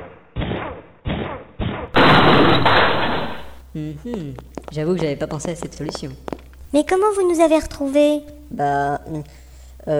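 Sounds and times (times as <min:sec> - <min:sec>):
debris rattling: 0:02.0 - 0:03.6
prison cell door splintering crash: 0:02.0 - 0:03.6
speech: 0:03.8 - 0:09.9.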